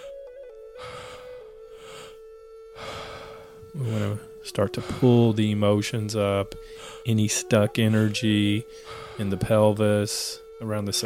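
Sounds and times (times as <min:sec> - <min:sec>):
slow deep inhalations during a guided breathwork session: 0:00.0 - 0:05.4, 0:06.6 - 0:07.1, 0:08.6 - 0:09.4
steady sustained musical tone: 0:00.0 - 0:11.0
speech: 0:03.8 - 0:11.0.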